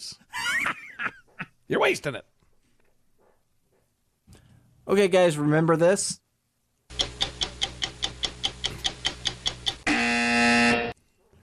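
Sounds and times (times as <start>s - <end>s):
speech: 1.7s - 2.3s, 4.9s - 6.2s
quick evenly spaced ticks: 6.9s - 9.9s
loud harsh buzzer signalling a boring caller: 9.8s - 11.0s.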